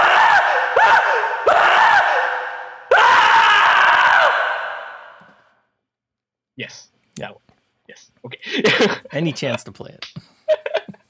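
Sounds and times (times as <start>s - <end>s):
man screaming in a film: 0.0s - 5.1s
laughter: 8.2s - 11.0s
speech: 8.8s - 10.2s.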